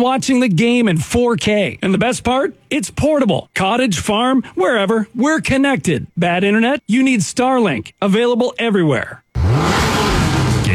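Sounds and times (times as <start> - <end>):
speech: 0.0 - 9.2
car engine revving at a summer car meet: 9.4 - 10.7.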